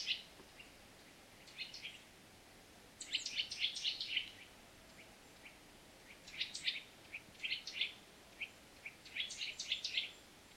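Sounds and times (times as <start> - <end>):
Eurasian nuthatch Sitta europaea chirping: 0.0 - 2.1, 3.0 - 10.5.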